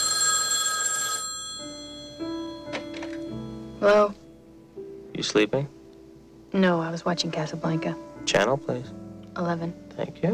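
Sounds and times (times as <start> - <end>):
telephone bell ringing in a film scene: 0.0 - 3.2
speech: 3.8 - 4.2, 5.2 - 5.8, 6.5 - 10.3.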